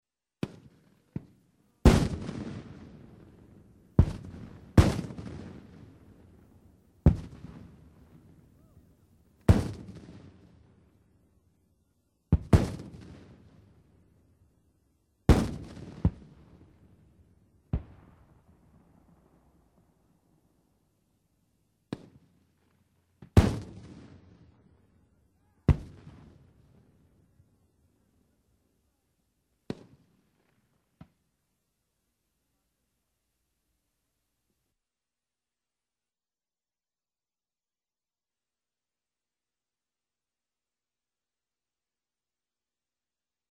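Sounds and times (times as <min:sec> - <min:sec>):
artillery exchange of fire: 0:01.8 - 0:03.4, 0:04.0 - 0:05.7, 0:09.4 - 0:10.4, 0:12.3 - 0:13.1, 0:15.3 - 0:16.2, 0:23.3 - 0:24.0.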